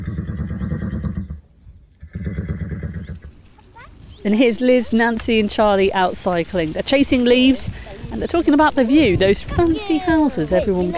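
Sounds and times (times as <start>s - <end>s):
horse in Old Glossop whinnying: 0.0s - 3.4s
speech: 4.2s - 10.9s.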